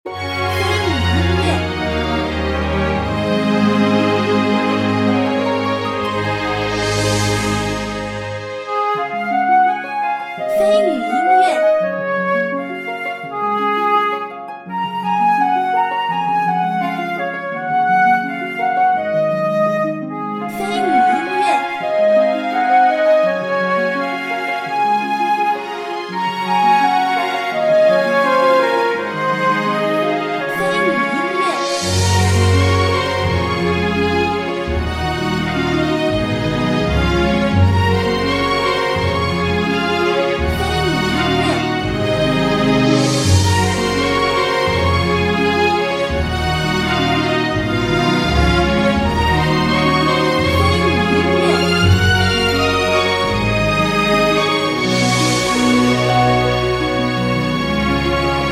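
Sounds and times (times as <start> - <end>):
town music: 0.0 - 58.4.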